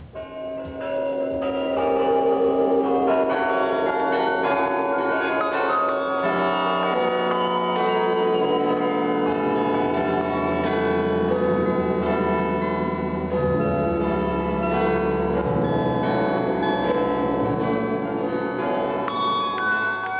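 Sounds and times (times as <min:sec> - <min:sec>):
resonant hum: 0:00.0 - 0:20.1
radio station interval signal bell chimes: 0:00.1 - 0:20.1.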